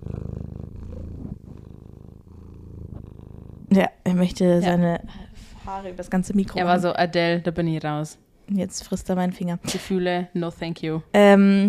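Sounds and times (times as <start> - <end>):
cat purring: 0.0 - 6.8
speech: 3.7 - 11.6.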